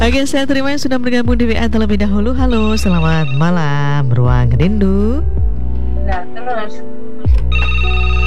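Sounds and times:
speech: 0:00.1 - 0:05.4, 0:06.4 - 0:07.9
studio telephone ringing for an incoming call: 0:02.5 - 0:04.1, 0:07.5 - 0:08.2.

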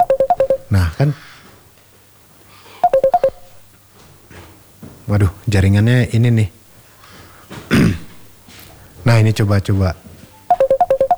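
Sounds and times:
telephone keypad dialing tones as a call is redialed: 0:00.0 - 0:00.7, 0:02.8 - 0:03.6, 0:10.4 - 0:11.1
faint low hum: 0:00.0 - 0:11.1
speech: 0:00.7 - 0:01.3, 0:05.1 - 0:06.6, 0:09.1 - 0:10.0.

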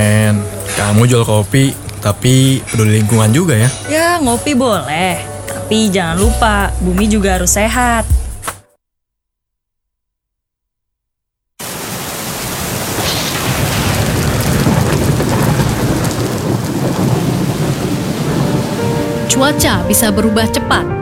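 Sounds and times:
heavy rain: 0:00.0 - 0:06.5, 0:11.6 - 0:21.0
speech: 0:00.0 - 0:08.2, 0:19.4 - 0:21.0
deep rumbling thunder: 0:12.4 - 0:21.0.

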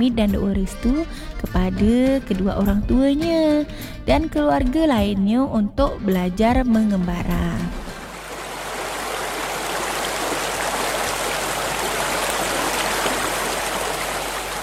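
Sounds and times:
speech: 0:00.0 - 0:07.8
river stream flowing with bubbling water: 0:07.8 - 0:14.6.

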